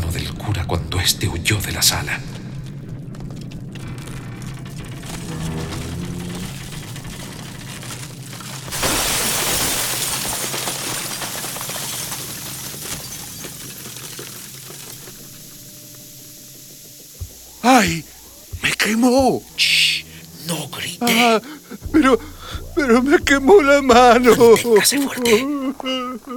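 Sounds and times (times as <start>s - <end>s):
low rumble: 0.0s - 10.2s, 14.8s - 26.3s
speech: 0.5s - 2.4s, 17.8s - 18.1s, 18.9s - 19.6s, 21.0s - 26.3s
window glass shattering under a jet of steam: 8.7s - 15.3s
hissing jet of steam from a Martian machine: 15.2s - 26.3s.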